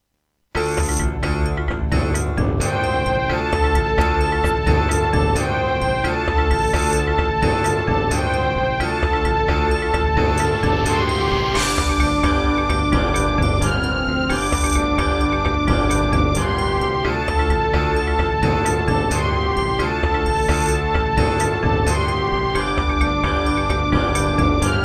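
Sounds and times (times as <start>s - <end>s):
wavetable synth: 0.6s - 24.8s.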